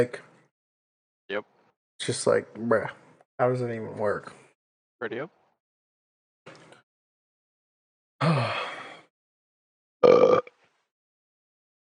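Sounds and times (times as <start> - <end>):
speech: 0.0 - 0.2, 1.3 - 4.4, 5.0 - 5.4, 8.2 - 8.6
loud throaty burp: 8.2 - 8.8, 10.0 - 10.6
breathy softer sound: 8.2 - 9.1.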